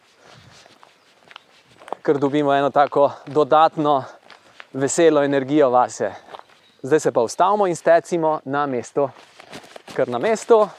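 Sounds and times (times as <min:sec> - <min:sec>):
quiet footsteps of a person walking briskly during an exercise routine: 0:00.0 - 0:06.7, 0:09.0 - 0:10.7
speech: 0:02.1 - 0:09.3, 0:10.0 - 0:10.7.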